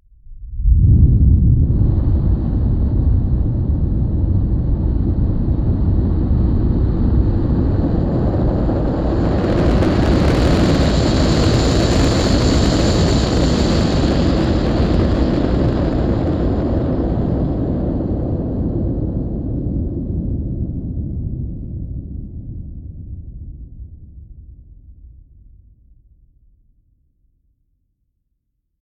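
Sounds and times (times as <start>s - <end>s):
rocket launch from a silo: 0.4s - 23.4s.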